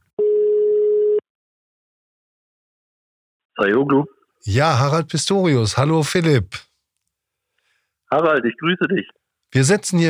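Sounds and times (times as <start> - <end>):
telephone ringing tone electronic beep: 0.2 - 1.2
speech: 3.6 - 6.7, 8.1 - 10.0.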